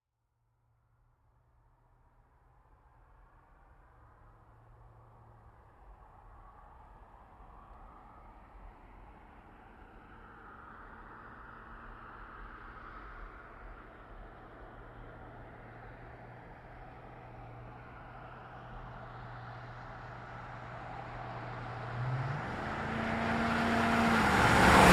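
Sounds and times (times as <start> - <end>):
GMC Savana truck passing by fast revving: 18.8 - 24.9.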